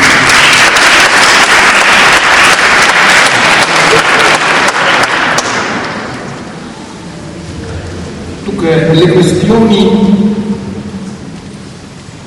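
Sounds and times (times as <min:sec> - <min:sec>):
audience applause: 0:00.0 - 0:06.2
speech: 0:08.6 - 0:10.4.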